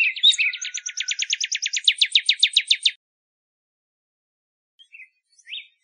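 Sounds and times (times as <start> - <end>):
Northern cardinal singing a rapid trill in Arizona: 0.0 - 2.8.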